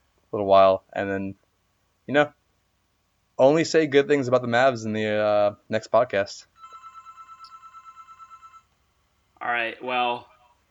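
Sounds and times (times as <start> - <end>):
speech: 0.3 - 1.4, 2.1 - 2.4, 3.4 - 6.5, 9.4 - 10.3
telephone ringing with a warbling electronic trill in an office: 6.6 - 8.7.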